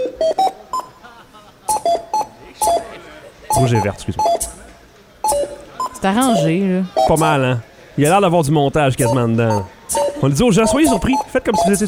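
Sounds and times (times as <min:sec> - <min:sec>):
grocery store cash register beeps: 0:00.0 - 0:01.0, 0:01.7 - 0:02.9, 0:03.5 - 0:04.6, 0:05.2 - 0:07.4, 0:08.9 - 0:11.8
laughter: 0:00.6 - 0:04.7
speech: 0:03.6 - 0:04.5, 0:06.0 - 0:11.8.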